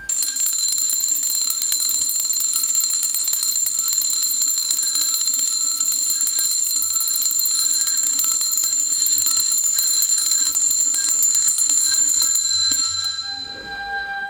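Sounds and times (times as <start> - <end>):
continuous rapid double bell ringing: 0.1 - 14.2.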